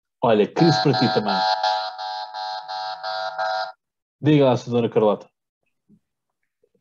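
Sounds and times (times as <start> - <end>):
speech: 0.2 - 1.8, 4.2 - 5.3
harsh buzzer horn blaring: 0.6 - 3.8.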